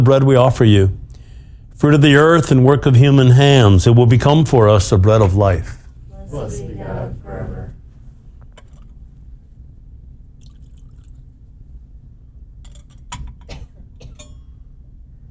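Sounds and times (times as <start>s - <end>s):
speech: 0.0s - 1.0s, 1.8s - 7.6s
low steady room hum: 0.0s - 15.2s
water and wine poured into a chalice: 10.4s - 11.3s
light clink of a chalice: 12.6s - 14.7s.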